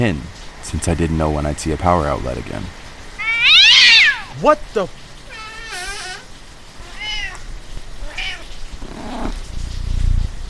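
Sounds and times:
speech: 0.0s - 2.8s, 4.4s - 5.0s
steady rain-like patter: 0.0s - 10.4s
cat meowing: 3.2s - 4.4s, 5.3s - 9.4s.

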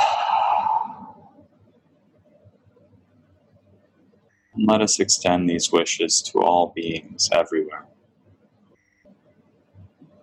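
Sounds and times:
long deep breathy exhale through the nose or mouth: 0.0s - 1.3s
speech: 4.6s - 8.0s.

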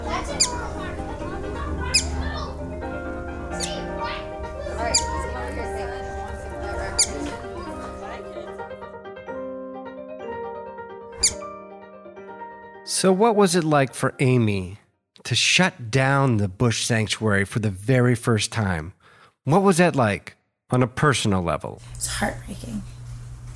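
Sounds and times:
whistling duck chirping: 0.2s - 0.8s, 1.9s - 2.3s, 3.5s - 3.9s, 4.8s - 5.4s, 6.8s - 7.3s, 11.2s - 11.4s
speech: 13.0s - 22.9s.

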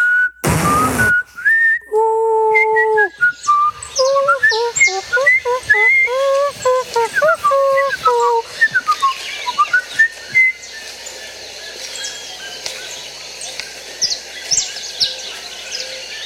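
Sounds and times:
person whistling a clear melodic tune: 0.0s - 10.6s.

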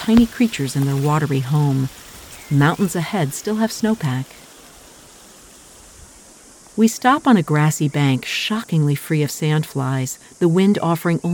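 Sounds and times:
speech: 0.0s - 4.5s, 6.8s - 11.3s
waterfall feeding a river: 0.0s - 6.6s.

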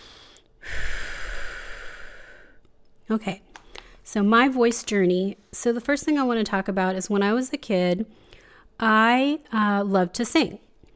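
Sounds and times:
long deep breath: 0.0s - 2.6s, 8.2s - 8.7s
speech: 3.1s - 3.5s, 4.1s - 10.6s.

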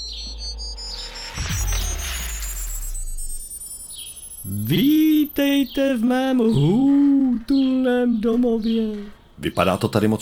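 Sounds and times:
sci-fi teleport deep rumbling surge: 0.0s - 5.4s
sci-fi teleport activation shimmering rising electronic tones: 0.0s - 7.7s
speech: 4.6s - 10.2s.

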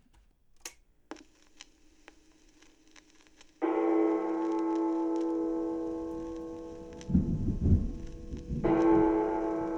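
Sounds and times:
heavy church bell tolling: 3.6s - 9.7s
thunder rumbling: 5.6s - 9.7s.

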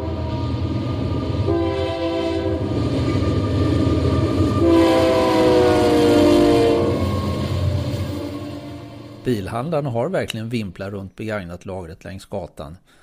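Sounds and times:
freight train horn blasts: 0.0s - 3.5s, 4.2s - 9.2s
long freight train rumbling past: 0.0s - 10.9s
speech: 9.3s - 13.0s.

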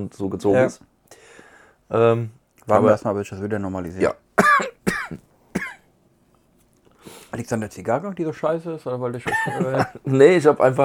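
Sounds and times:
speech: 0.0s - 0.9s, 1.9s - 4.7s, 7.3s - 10.8s
faint rustle or breath: 1.1s - 1.9s, 6.3s - 7.4s
harsh coughs: 4.4s - 5.9s, 9.3s - 10.0s
laughter: 9.2s - 10.2s.

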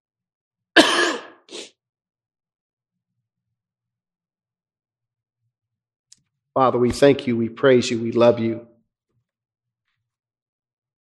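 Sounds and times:
soft throat clearing: 0.8s - 1.5s
harsh cough: 0.8s - 1.6s
speech: 6.6s - 8.7s.

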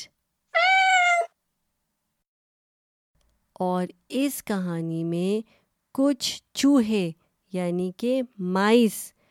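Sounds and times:
cat meowing: 0.6s - 1.3s
speech: 3.6s - 9.2s.

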